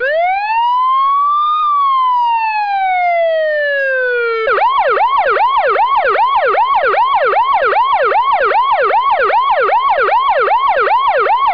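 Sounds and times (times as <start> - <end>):
siren: 0.0 - 11.5.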